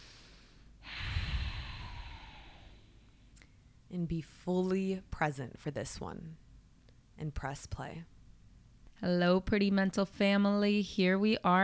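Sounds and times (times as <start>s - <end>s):
deep breath drawn in: 0.0s - 3.1s
speech: 3.9s - 6.4s, 7.2s - 8.1s, 9.0s - 11.6s.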